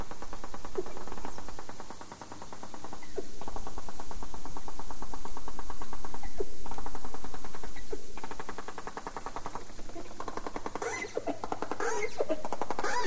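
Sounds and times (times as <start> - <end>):
steady low underwater hiss: 0.0 - 13.0
dolphin burst-pulse calls: 10.8 - 13.0.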